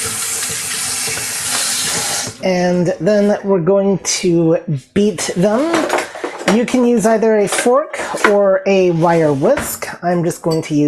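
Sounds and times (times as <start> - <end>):
running water from a tap rinsing raw egg off hands in a kitchen: 0.0 - 2.4
speech: 2.4 - 10.8.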